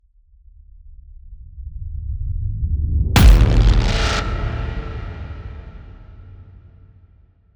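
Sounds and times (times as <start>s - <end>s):
long rumble: 3.2s - 6.6s
whoosh to hit: 3.2s - 6.6s.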